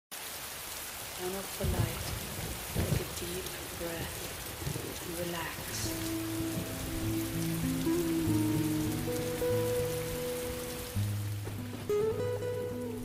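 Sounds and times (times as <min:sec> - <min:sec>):
steady rain pattering outside: 0:00.1 - 0:13.0
speech: 0:01.2 - 0:02.2, 0:03.2 - 0:08.4
low sustained musical tones: 0:05.6 - 0:13.0.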